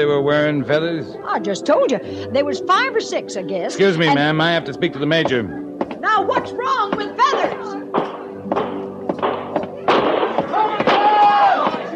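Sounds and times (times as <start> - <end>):
speech: 0.0 - 7.9
gunshots from a frontier stockade: 7.9 - 11.9.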